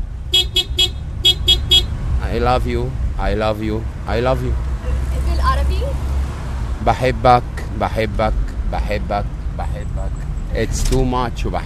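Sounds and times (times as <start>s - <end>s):
low car engine rumble: 0.0s - 11.6s
car horn honking in a patterned rhythm: 0.2s - 2.0s
speech: 2.4s - 4.6s, 6.8s - 11.6s.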